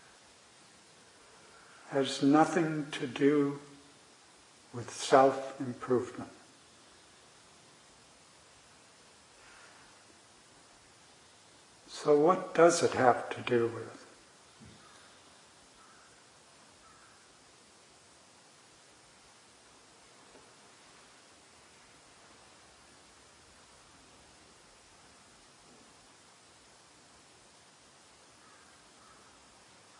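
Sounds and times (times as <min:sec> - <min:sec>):
steady even hiss of broadband noise: 0:00.0 - 0:29.9
speech: 0:01.9 - 0:03.7, 0:04.7 - 0:06.4, 0:12.0 - 0:14.0
faint crows cawing: 0:14.7 - 0:17.4, 0:28.4 - 0:29.9.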